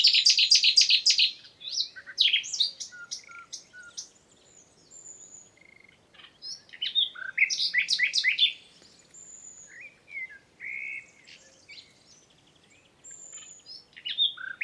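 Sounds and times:
common nightingale Luscinia megarhynchos song with whistles and rapid chirps: 0.0 - 4.2, 6.5 - 12.3, 13.1 - 14.6.

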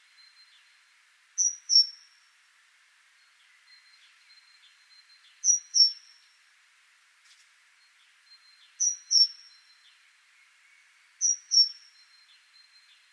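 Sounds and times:
faint background hiss: 0.0 - 13.1
great tit Parus major giving two-note phrases: 1.4 - 2.1, 5.4 - 6.2, 8.8 - 9.7, 11.2 - 12.0.

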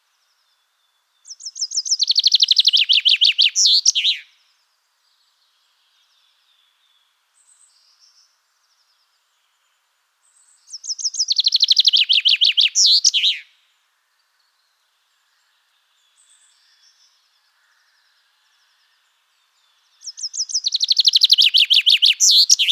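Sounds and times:
faint common chaffinch chirps: 0.0 - 22.7
common chaffinch Fringilla coelebs song: 1.1 - 4.3, 10.3 - 13.5, 19.4 - 22.7.

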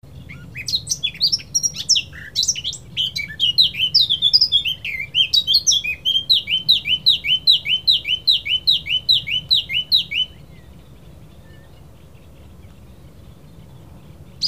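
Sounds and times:
Eurasian blackcap Sylvia atricapilla singing a varied warble: 0.1 - 14.4.

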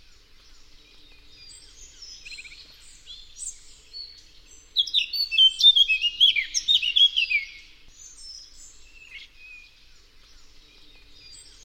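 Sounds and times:
Eurasian blackcap Sylvia atricapilla warbling song: 0.0 - 11.6.

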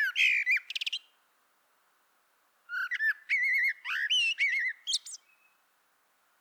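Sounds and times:
common blackbird Turdus merula singing: 0.0 - 1.0, 2.7 - 5.6.

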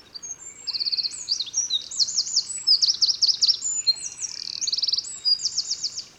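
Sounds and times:
Eurasian wren Troglodytes troglodytes singing shrill trills and rattling phrases: 0.2 - 6.1.

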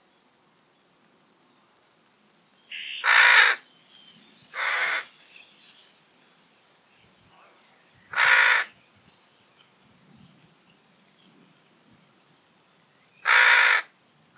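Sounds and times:
Carrion crow Corvus corone cawing rough and hoarse: 2.7 - 3.6, 4.6 - 5.1, 8.1 - 8.7, 13.2 - 14.3.

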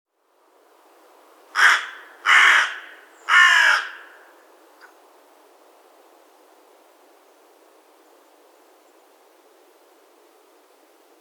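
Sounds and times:
Corvus corone carrion crow giving loud rasping caws: 1.6 - 4.4.

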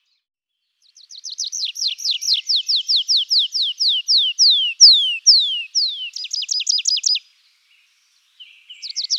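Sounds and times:
tree pipit (Anthus trivialis) singing: 1.4 - 7.2.

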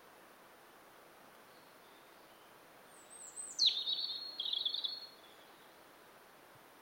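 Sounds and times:
European robin Erithacus rubecula singing: 1.5 - 5.8.

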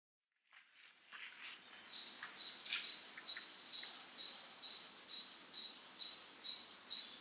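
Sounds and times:
Great tit Parus major calling with high thin two-note phrases: 1.9 - 7.1.

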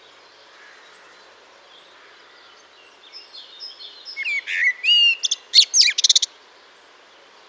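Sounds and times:
Eurasian blackbird Turdus merula singing: 1.8 - 6.3.

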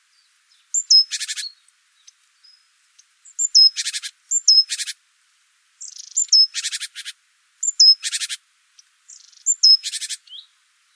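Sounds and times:
great tit Parus major calling: 0.7 - 1.5, 3.3 - 4.9, 5.8 - 7.0, 7.6 - 8.4, 9.1 - 10.4.

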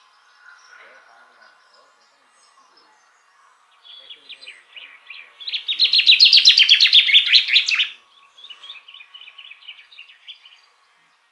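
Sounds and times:
common chaffinch Fringilla coelebs song trill: 4.8 - 10.6.

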